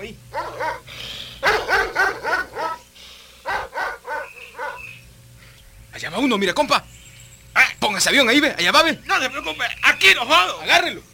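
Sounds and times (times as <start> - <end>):
higher whining dog yips: 0.3 - 5.1
several hunting dogs barking and yelping outdoors: 0.3 - 5.1
speech: 6.2 - 7.0, 8.0 - 11.1.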